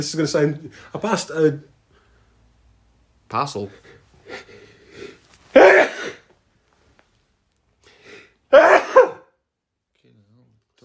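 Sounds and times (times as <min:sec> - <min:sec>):
speech: 0:00.0 - 0:01.7, 0:03.3 - 0:04.6
dry sneeze: 0:05.5 - 0:06.3, 0:08.5 - 0:09.3.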